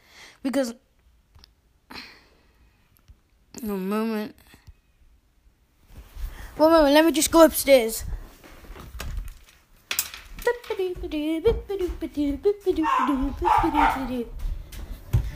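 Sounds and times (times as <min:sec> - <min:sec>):
speech: 0:00.4 - 0:00.9, 0:03.6 - 0:04.6, 0:06.6 - 0:08.1, 0:10.9 - 0:14.4
dog barking with yelping barks and whiny cries: 0:12.7 - 0:14.3.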